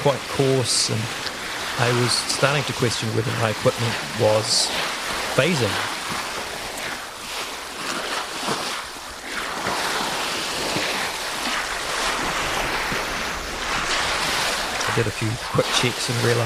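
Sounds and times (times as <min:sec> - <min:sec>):
speech: 0:00.0 - 0:06.0, 0:15.0 - 0:16.4
ocean swell lapping against an iceberg: 0:00.0 - 0:16.4
wind rumble: 0:00.0 - 0:16.4.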